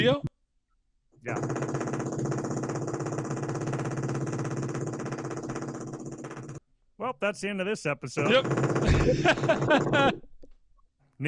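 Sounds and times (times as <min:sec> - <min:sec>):
speech: 0:00.0 - 0:00.3, 0:01.2 - 0:01.8, 0:07.0 - 0:10.3
jackhammer pounding heard through a door: 0:01.3 - 0:06.6, 0:08.2 - 0:10.1
laughter: 0:08.3 - 0:10.2.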